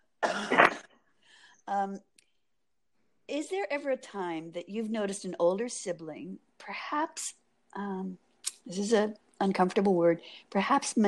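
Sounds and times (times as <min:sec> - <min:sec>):
person coughing harshly: 0:00.2 - 0:00.9
throat clearing: 0:00.2 - 0:00.9
speech: 0:01.7 - 0:02.1, 0:03.3 - 0:11.0.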